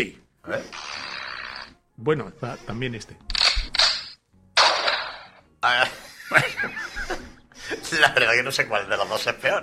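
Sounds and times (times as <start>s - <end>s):
speech: 0.0s - 0.9s, 2.0s - 3.4s, 5.6s - 9.6s
gunshots: 3.6s - 5.4s
laughter: 5.8s - 8.2s.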